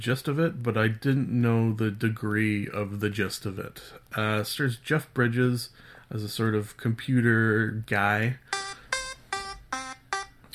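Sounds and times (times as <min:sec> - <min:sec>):
speech: 0:00.0 - 0:08.4
timer alarm beeping: 0:08.5 - 0:10.4.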